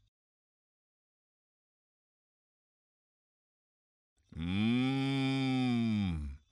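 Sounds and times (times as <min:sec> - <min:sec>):
cow mooing: 0:04.4 - 0:06.1.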